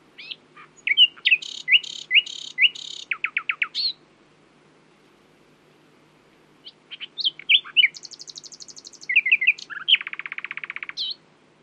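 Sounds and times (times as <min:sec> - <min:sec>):
common nightingale Luscinia megarhynchos singing: 0:00.0 - 0:04.0, 0:06.6 - 0:11.2.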